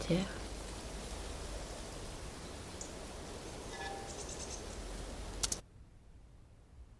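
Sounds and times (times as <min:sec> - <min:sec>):
speech: 0:00.0 - 0:00.4
quiet hiss: 0:00.0 - 0:06.9
wind gusts through reeds and grasses: 0:00.0 - 0:06.9
faint insect or bird chirps: 0:02.3 - 0:05.4
sharp clicks: 0:05.4 - 0:05.6.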